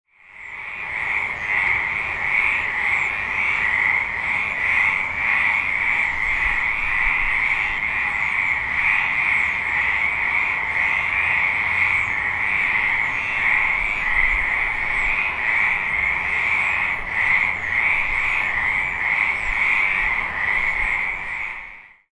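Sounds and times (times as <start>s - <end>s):
tree frogs: 0.1s - 22.1s.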